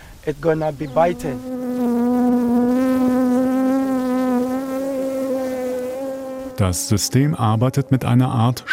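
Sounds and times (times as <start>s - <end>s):
speech: 0.2s - 1.6s, 6.6s - 8.7s
bees buzzing at a beehive: 0.5s - 8.5s.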